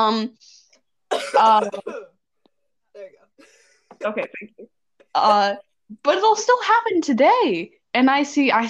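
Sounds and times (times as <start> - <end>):
speech: 0.0 - 2.1, 3.0 - 8.6
person coughing in raspy bursts: 1.1 - 2.2, 3.0 - 4.7.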